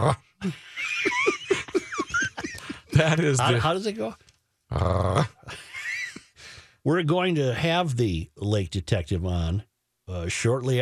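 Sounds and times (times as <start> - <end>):
person imitating a dog growling over a toy: 0.0 - 0.3, 4.7 - 5.5
speech: 0.0 - 1.0, 3.0 - 5.3, 6.9 - 10.8
people laughing: 0.4 - 3.6.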